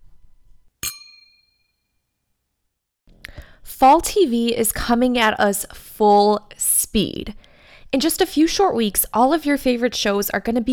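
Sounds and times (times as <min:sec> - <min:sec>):
glasses clinking in a toast: 0:00.8 - 0:01.6
speech: 0:03.7 - 0:10.7.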